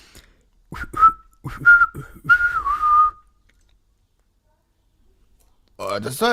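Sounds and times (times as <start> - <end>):
person whistling bird-like calls to scare away a bird on a chainsaw chain: 0.8 - 3.4
speech: 1.5 - 1.8, 6.0 - 6.3.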